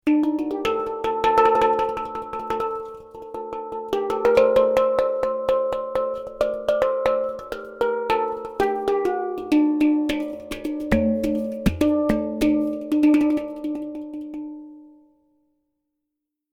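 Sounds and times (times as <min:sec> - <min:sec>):
steel pan: 0:00.1 - 0:14.4.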